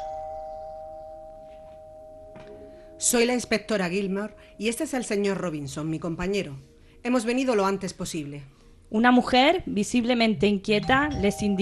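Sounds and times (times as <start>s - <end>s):
doorbell ringing with a steady electronic tone: 0.0s - 5.4s, 10.9s - 11.6s
speech: 3.0s - 11.6s.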